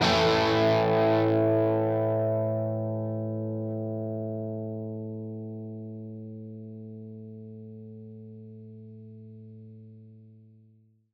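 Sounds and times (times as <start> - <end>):
guitar single power chord in A minor: 0.0 - 7.3.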